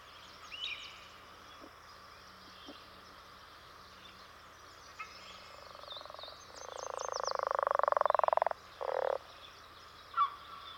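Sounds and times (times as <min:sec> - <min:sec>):
leopard frog territorial song: 0:05.6 - 0:09.3.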